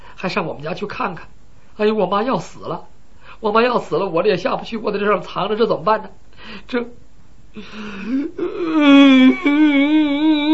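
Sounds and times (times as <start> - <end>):
speech: 0.2 - 7.0, 7.6 - 10.5
man wailing and crying: 7.9 - 10.5.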